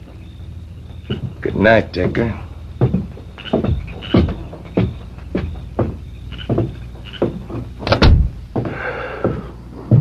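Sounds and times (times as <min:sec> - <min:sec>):
lighter knocking and shuffling thumps: 0:00.9 - 0:10.0
speech: 0:01.1 - 0:02.5
door shutting with a solid thud: 0:07.8 - 0:08.4.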